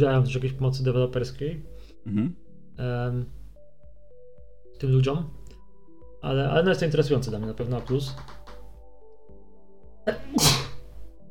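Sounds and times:
speech: 0.0s - 3.4s, 4.8s - 5.4s, 6.2s - 8.4s, 10.1s - 10.6s
sneeze: 10.2s - 10.8s.

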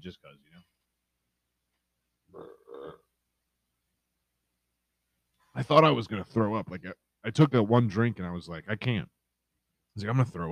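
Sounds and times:
speech: 0.0s - 0.8s, 5.6s - 9.2s, 10.0s - 10.5s
throaty burp: 2.3s - 3.1s.

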